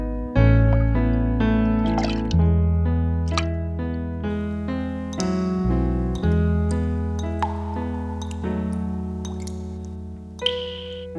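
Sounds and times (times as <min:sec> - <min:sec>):
slow piano chords over a deep bass: 0:00.0 - 0:11.1
small bright ticks: 0:06.1 - 0:11.1.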